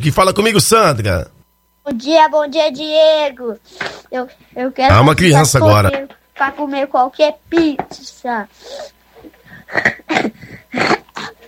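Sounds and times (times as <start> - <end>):
speech: 0.0 - 11.3
child coughing: 9.6 - 11.4.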